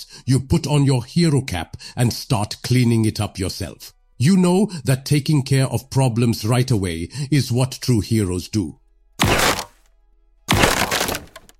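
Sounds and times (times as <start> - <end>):
speech: 0.0 - 8.8
something cracking and shattering with a crunch: 9.2 - 9.8, 10.5 - 11.5.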